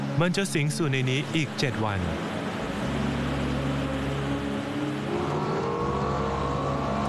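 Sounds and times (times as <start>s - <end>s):
speech: 0.1s - 2.3s
LFA sports car engine accelerating through a factory: 2.2s - 7.0s.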